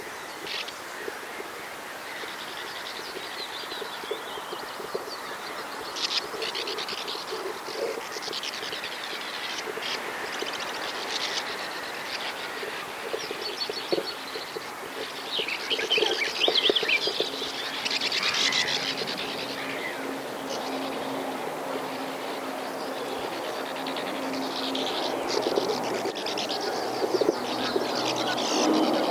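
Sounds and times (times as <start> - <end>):
sand martin calling: 2.1 - 29.0.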